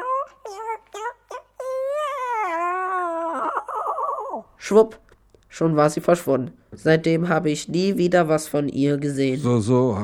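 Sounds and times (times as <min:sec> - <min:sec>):
person imitating cat meowing: 0:00.0 - 0:04.5
speech: 0:04.6 - 0:10.0.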